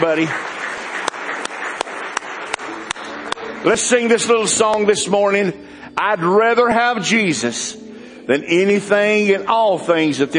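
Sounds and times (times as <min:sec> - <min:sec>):
speech: 0:00.0 - 0:00.5, 0:03.6 - 0:10.3
rustling crowd applause: 0:00.0 - 0:04.8
congregation clapping hands in praise during a church service: 0:00.0 - 0:05.4.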